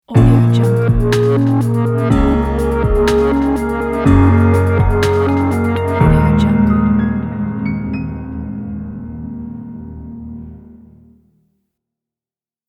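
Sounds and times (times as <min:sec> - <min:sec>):
modern creative logo intro music: 0:00.2 - 0:09.4.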